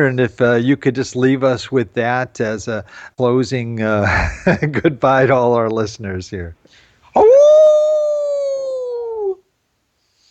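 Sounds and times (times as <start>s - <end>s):
speech: 0.0s - 7.7s
person giving a hound-dog howl: 7.2s - 9.4s.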